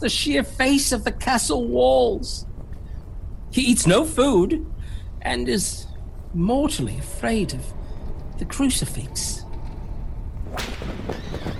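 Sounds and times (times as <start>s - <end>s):
speech: 0.0s - 2.5s, 3.5s - 7.8s, 8.4s - 9.4s
steady low rumble: 0.0s - 11.5s
whip cracking: 10.5s - 11.4s.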